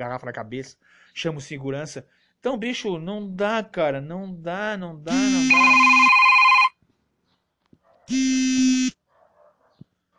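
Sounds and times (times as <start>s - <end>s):
speech: 0.0s - 6.0s, 8.1s - 8.5s
telephone ringing: 5.1s - 6.8s.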